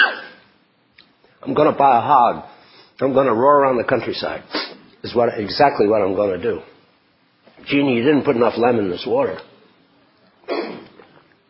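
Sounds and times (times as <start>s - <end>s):
short cough from a tickling throat: 0.0s - 0.4s, 10.5s - 11.0s
speech: 1.4s - 6.7s, 7.6s - 9.5s.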